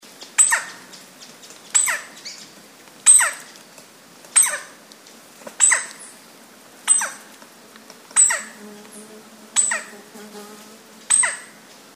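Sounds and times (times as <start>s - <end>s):
king woodpecker call: 0.4s - 0.9s, 1.7s - 2.4s, 3.1s - 3.5s, 4.4s - 4.8s, 5.6s - 6.1s, 6.9s - 7.2s, 8.1s - 8.6s, 9.6s - 10.0s, 11.0s - 11.6s.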